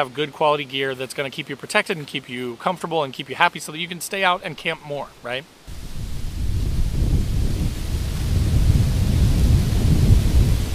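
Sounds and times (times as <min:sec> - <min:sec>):
speech: 0:00.0 - 0:05.7
strong wind gusts buffeting the microphone: 0:05.7 - 0:10.7.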